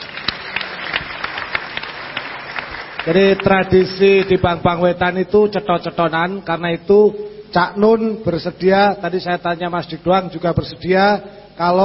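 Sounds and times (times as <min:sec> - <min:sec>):
audience at a discussion gathering applauding: 0:00.0 - 0:04.5
speech: 0:03.0 - 0:11.8.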